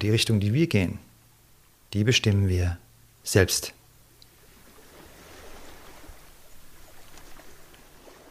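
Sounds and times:
speech: 0:00.0 - 0:01.1, 0:01.9 - 0:03.8
sea waves on the shore: 0:04.3 - 0:08.2.

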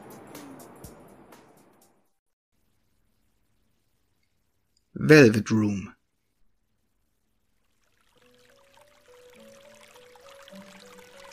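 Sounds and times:
speech: 0:05.0 - 0:06.0
gentle water splashing: 0:07.4 - 0:11.3
soft calm melody of sustained tones: 0:08.2 - 0:11.3.

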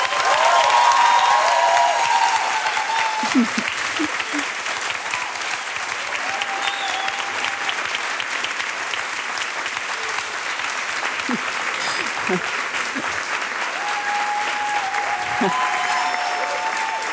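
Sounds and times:
cheers from a live audience: 0:00.0 - 0:17.1
live audience applause: 0:00.0 - 0:17.1
laughter: 0:03.0 - 0:04.7, 0:11.2 - 0:13.3, 0:15.1 - 0:15.9
whistles from a live audience: 0:06.6 - 0:07.4.

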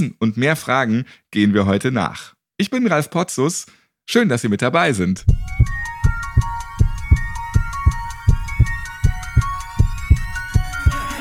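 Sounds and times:
speech: 0:00.0 - 0:05.8
thumping heartbeat: 0:05.2 - 0:11.1.

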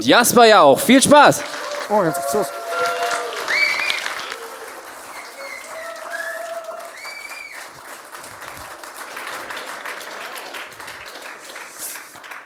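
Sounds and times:
speech: 0:00.0 - 0:02.6
laughter: 0:00.5 - 0:11.7
large audience applauding: 0:00.6 - 0:12.4
audience cheers and whoops: 0:00.8 - 0:08.7.

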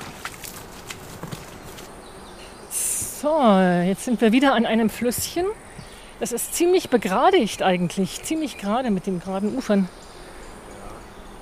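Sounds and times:
footsteps walking on a forest path with many puddles: 0:00.0 - 0:03.2, 0:04.4 - 0:06.2
steady hissing background: 0:00.0 - 0:11.3
speech: 0:03.2 - 0:05.6, 0:06.2 - 0:10.0.

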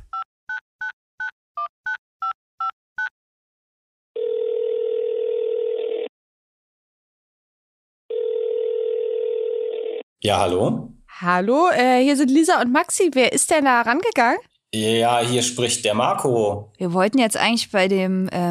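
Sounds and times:
long steady telephone ringing tones: 0:04.2 - 0:06.0, 0:08.1 - 0:10.0
speech: 0:10.2 - 0:18.4.

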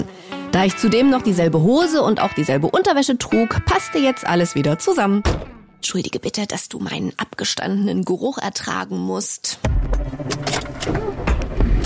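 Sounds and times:
speech: 0:00.6 - 0:11.8
car engine starting: 0:09.7 - 0:11.8.

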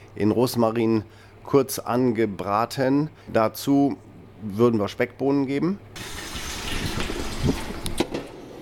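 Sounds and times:
speech: 0:00.2 - 0:06.2, 0:07.4 - 0:07.6
tap water running into a cooking pot: 0:06.0 - 0:08.0.

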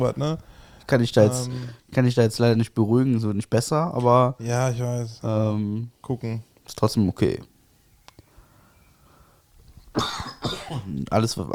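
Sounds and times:
speech: 0:00.0 - 0:07.5, 0:10.0 - 0:11.5
faint clicks: 0:08.0 - 0:08.3
person coughing into the microphone: 0:10.0 - 0:11.0.

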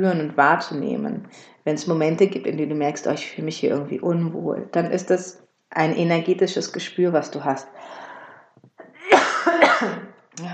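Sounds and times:
speech: 0:00.0 - 0:08.0, 0:09.8 - 0:10.5
intake of breath: 0:07.7 - 0:08.6
person coughing: 0:09.0 - 0:10.1.

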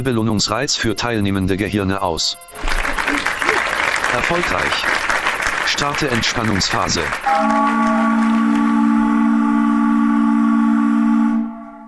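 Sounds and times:
speech: 0:00.0 - 0:03.2, 0:04.1 - 0:05.0, 0:05.7 - 0:08.4
laughter: 0:02.6 - 0:07.7
foghorn blast: 0:07.3 - 0:11.8.

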